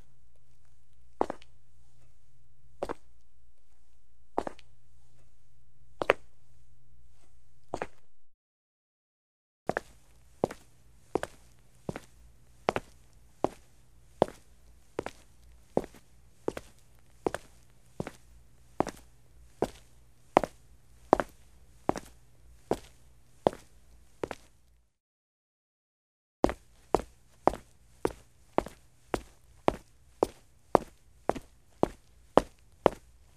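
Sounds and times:
footsteps in shoes on a brick floor: 0:01.2 - 0:01.4, 0:09.7 - 0:13.7, 0:14.2 - 0:14.5, 0:15.0 - 0:18.2, 0:18.8 - 0:19.1, 0:19.6 - 0:22.1, 0:22.7 - 0:24.5, 0:26.5 - 0:33.1.

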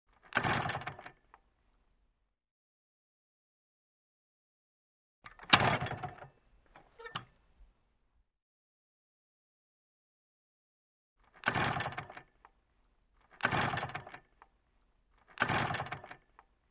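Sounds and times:
motorcycle engine failing to start: 0:00.1 - 0:01.3, 0:05.3 - 0:07.2, 0:11.2 - 0:12.5, 0:13.2 - 0:14.4, 0:15.2 - 0:16.5.

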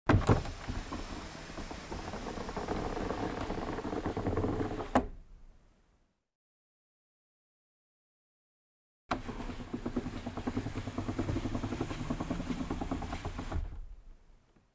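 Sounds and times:
car glass window lowered and raised manually: 0:00.1 - 0:05.1, 0:09.1 - 0:14.0.

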